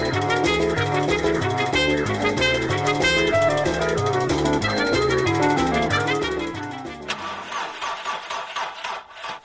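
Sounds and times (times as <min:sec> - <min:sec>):
car starter motor cranking with engine failing to start: 0:00.2 - 0:09.4.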